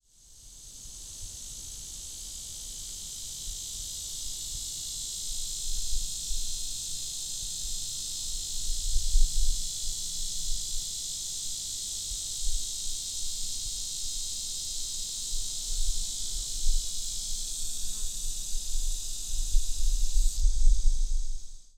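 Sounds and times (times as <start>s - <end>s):
lyric cicada buzzing: 0.3s - 21.7s.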